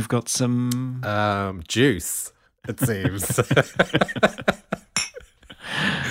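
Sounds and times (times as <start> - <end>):
speech: 0.0 - 4.7
laughter: 2.7 - 6.0
glasses clinking together in a toast: 4.9 - 5.3.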